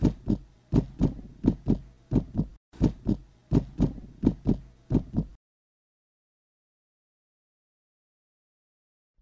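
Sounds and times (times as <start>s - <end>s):
pounding heartbeat thudding: 0.0s - 5.4s.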